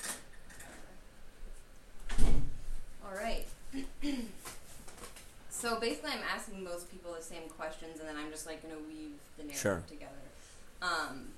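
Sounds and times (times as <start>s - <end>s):
quiet room noise: 0.0s - 11.3s
door shutting with a soft thud: 2.0s - 2.6s
speech: 5.7s - 11.3s.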